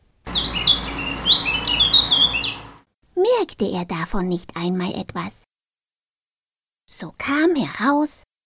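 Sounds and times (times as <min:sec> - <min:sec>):
blackbird singing fluting and chirping phrases: 0:00.3 - 0:02.8
speech: 0:03.4 - 0:05.5, 0:07.0 - 0:08.3.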